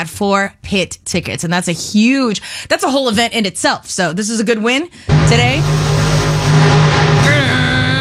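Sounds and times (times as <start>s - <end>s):
speech: 0.0s - 6.0s
monster truck engine revving: 5.1s - 7.9s.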